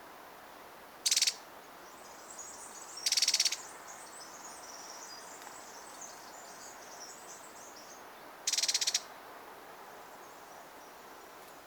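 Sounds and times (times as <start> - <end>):
faint background hiss: 0.0 - 11.6
Eurasian wren rattle call: 1.0 - 1.4, 3.0 - 3.7, 8.5 - 9.1.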